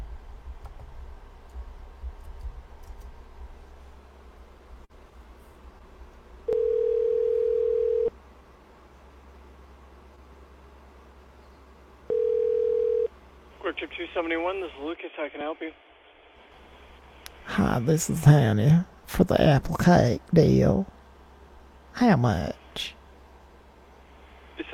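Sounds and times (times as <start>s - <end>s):
ringback tone of an outgoing telephone call: 6.5s - 8.1s, 12.1s - 13.1s
speech: 13.8s - 15.9s, 17.6s - 21.0s, 22.0s - 23.0s.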